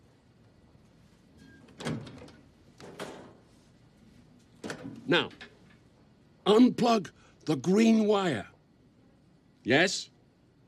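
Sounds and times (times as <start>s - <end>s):
small metal doors of wall-mounted electricity boxes clattering open: 1.7s - 3.4s
speech: 5.1s - 5.5s, 6.5s - 8.5s, 9.6s - 10.1s.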